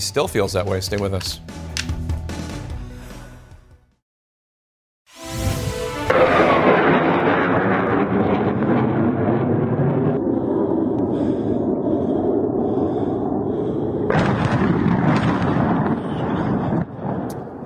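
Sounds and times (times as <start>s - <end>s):
speech: 0.0s - 1.7s
airstrike explosions hitting a town with a power plant and civilian building: 6.0s - 17.6s.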